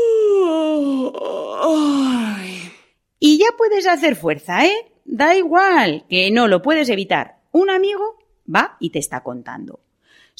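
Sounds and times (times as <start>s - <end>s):
person yawning: 0.0s - 2.9s
speech: 3.8s - 9.8s.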